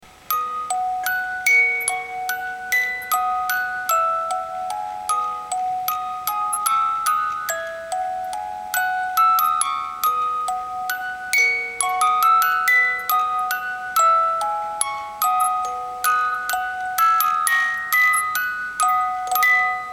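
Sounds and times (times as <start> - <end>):
Swiss 18-note paperweight music box melody: 0.1 - 19.9.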